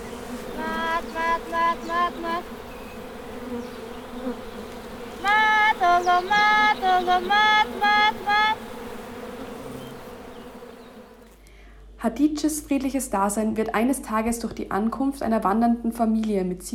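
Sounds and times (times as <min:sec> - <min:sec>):
honey bees buzzing around a hive: 0:00.0 - 0:11.4
speech: 0:01.4 - 0:02.7, 0:03.5 - 0:04.6, 0:05.2 - 0:08.6, 0:12.0 - 0:16.7.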